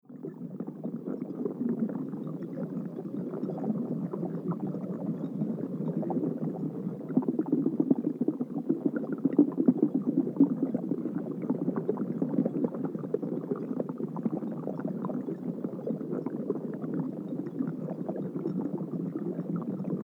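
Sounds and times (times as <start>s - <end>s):
bubbling water: 0.1s - 20.0s.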